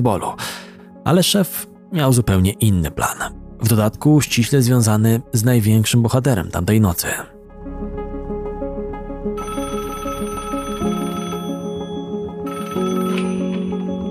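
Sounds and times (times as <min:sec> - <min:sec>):
speech: 0:00.0 - 0:07.3
telephone ringing with melodic electronic ringtone: 0:09.4 - 0:14.0.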